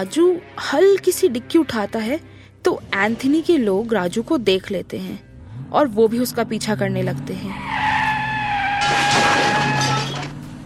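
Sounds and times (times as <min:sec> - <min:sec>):
speech: 0:00.0 - 0:07.8
car speeding away while escaping pursuers in a chase: 0:05.3 - 0:08.8
high sustained tire squeals: 0:07.4 - 0:10.6
burst of harsh crashing noise: 0:08.8 - 0:10.3.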